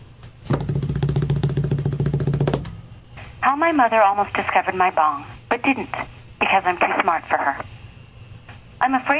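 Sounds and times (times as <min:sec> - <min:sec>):
drum roll: 0:00.5 - 0:02.8
speech: 0:03.5 - 0:07.8, 0:08.8 - 0:09.1.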